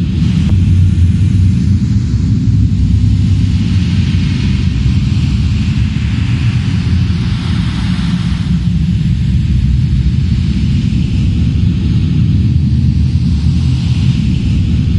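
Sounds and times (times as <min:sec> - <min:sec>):
large fire: 0:00.0 - 0:14.9.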